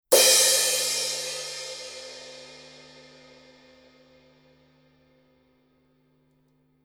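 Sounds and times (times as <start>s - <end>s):
Paiste 900 18-inch crash cymbal hit on the edge: 0.1s - 3.6s.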